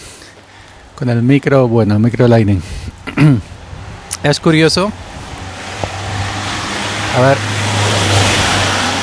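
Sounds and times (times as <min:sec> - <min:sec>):
road hiss from a passing delivery van: 0:00.0 - 0:09.0
speech: 0:01.0 - 0:03.5, 0:04.2 - 0:05.1, 0:07.2 - 0:07.6
bread delivery van engine drone: 0:02.8 - 0:09.0.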